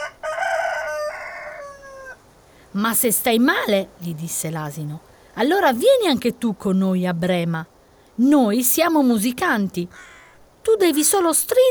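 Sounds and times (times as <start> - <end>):
old rooster crowing mournfully: 0.0 - 2.3
speech: 2.8 - 11.6.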